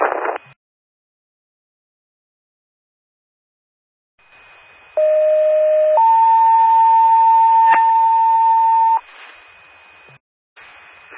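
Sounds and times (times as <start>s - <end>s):
faint burst of static: 0.0s - 0.6s, 9.0s - 11.1s
fire department pager alert tones: 5.0s - 9.0s.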